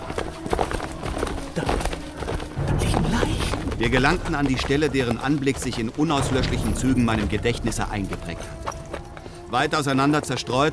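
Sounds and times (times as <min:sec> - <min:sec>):
black horse hooves galloping: 0:00.0 - 0:10.7
speech: 0:01.6 - 0:01.8, 0:03.8 - 0:08.6, 0:09.5 - 0:10.7.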